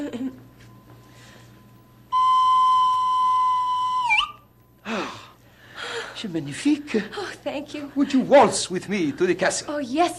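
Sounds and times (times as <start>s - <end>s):
faint quieter tone: 0.6s - 5.0s
slide whistle being played: 2.1s - 4.5s
speech: 6.2s - 10.1s.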